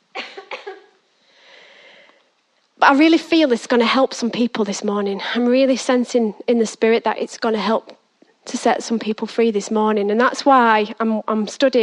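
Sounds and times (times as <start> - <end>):
person coughing: 0.2 - 1.0
soft breathy hiss: 0.2 - 2.6
speech: 2.8 - 11.8.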